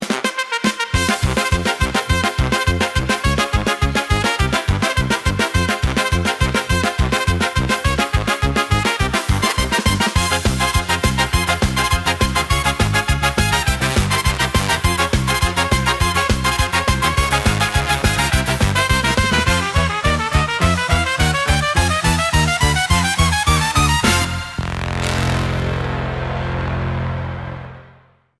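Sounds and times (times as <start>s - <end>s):
trumpet in a coda: 0.0s - 28.3s
jazz piano: 7.2s - 24.6s.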